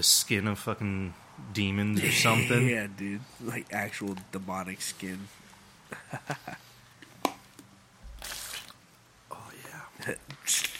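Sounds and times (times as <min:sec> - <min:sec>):
speech: 0:00.0 - 0:06.6
liquid swishing in a mouth while rinsing: 0:08.2 - 0:08.8.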